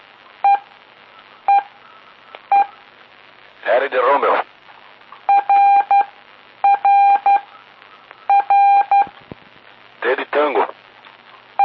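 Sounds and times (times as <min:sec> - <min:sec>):
steady radio hiss: 0:00.0 - 0:11.6
Morse code letter tones in a practice lesson: 0:00.4 - 0:00.7, 0:01.5 - 0:01.7, 0:02.5 - 0:02.8, 0:05.3 - 0:07.5, 0:08.3 - 0:09.1
speech: 0:03.6 - 0:04.5.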